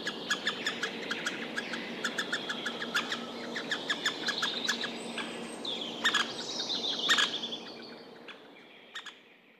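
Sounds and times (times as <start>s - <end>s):
White-backed Woodpecker nestlings begging calls beside a road in Nastola, Finland: 0.0s - 7.7s
White-backed Woodpecker parent answering: 0.0s - 9.3s.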